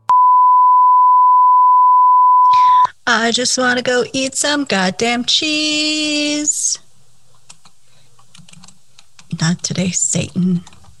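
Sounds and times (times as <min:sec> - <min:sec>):
low steady hum: 0:00.0 - 0:10.8
speech: 0:03.1 - 0:06.8, 0:09.4 - 0:10.7
typing on a computer keyboard: 0:07.5 - 0:09.8, 0:10.6 - 0:10.9.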